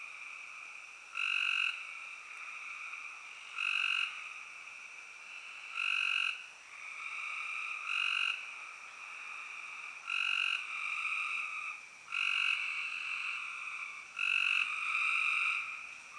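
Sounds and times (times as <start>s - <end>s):
spring peeper chorus: 0.0s - 16.1s.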